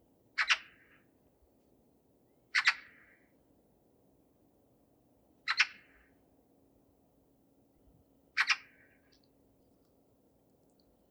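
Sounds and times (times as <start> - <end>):
Eurasian magpie (Pica pica) harsh double-noted chack calls: 8.4 - 8.8.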